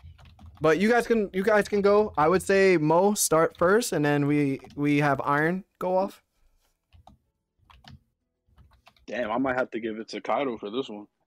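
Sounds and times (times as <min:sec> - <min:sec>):
computer keyboard typing: 0:00.0 - 0:05.5, 0:06.8 - 0:09.3
speech: 0:00.6 - 0:06.2, 0:09.1 - 0:11.2.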